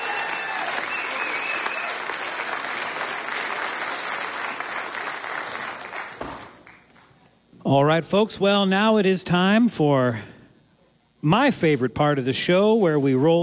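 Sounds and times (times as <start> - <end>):
large audience applause: 0.0 - 7.1
speech: 7.7 - 10.3, 11.2 - 13.4.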